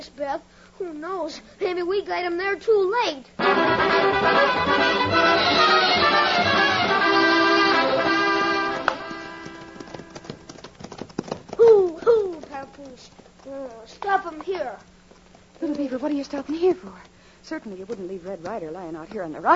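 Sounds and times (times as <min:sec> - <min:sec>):
speech: 0:00.0 - 0:06.7, 0:12.8 - 0:14.9, 0:15.6 - 0:19.5
tuneful music: 0:03.4 - 0:10.2
horses' hooves clip-clopping as riders set off: 0:04.4 - 0:19.2
person calling out: 0:19.4 - 0:19.5.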